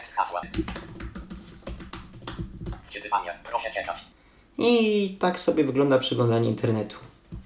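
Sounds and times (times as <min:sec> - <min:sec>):
speech: 0:00.2 - 0:01.0, 0:02.9 - 0:07.1
typing a login on a computer keyboard: 0:00.4 - 0:02.9.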